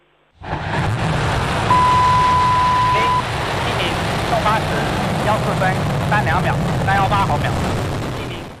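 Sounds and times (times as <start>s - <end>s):
carrier rocket roaring at ignition and liftoff: 0.4s - 8.5s.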